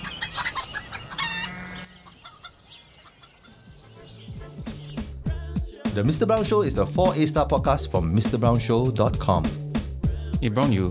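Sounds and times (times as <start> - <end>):
rooster crowing: 0.0 - 2.2
chickens clucking: 0.0 - 5.1
speech: 6.0 - 9.6, 10.4 - 10.9.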